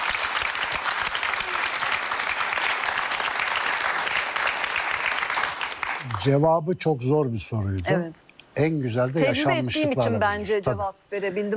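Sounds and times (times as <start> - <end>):
audience applause: 0.0 - 6.4
speech: 6.2 - 11.5.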